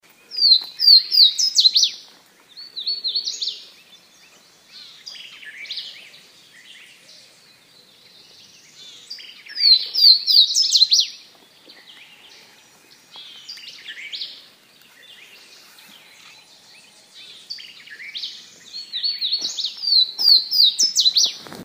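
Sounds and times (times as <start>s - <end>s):
Swainson's Warbler singing: 0.1s - 21.4s.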